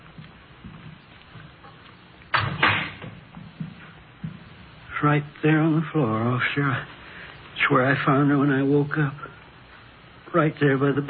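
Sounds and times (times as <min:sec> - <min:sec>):
soft thuds and shuffles: 0:00.0 - 0:05.0
door opening: 0:01.6 - 0:04.5
speech: 0:05.0 - 0:07.0, 0:07.7 - 0:09.2, 0:10.3 - 0:11.0.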